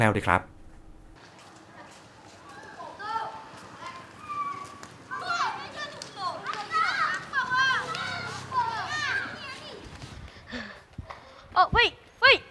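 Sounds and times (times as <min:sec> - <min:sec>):
speech: 0:00.0 - 0:00.5
children's footsteps and scuffling while playing football: 0:01.2 - 0:12.2
children shouting while playing football outdoors: 0:01.6 - 0:10.1.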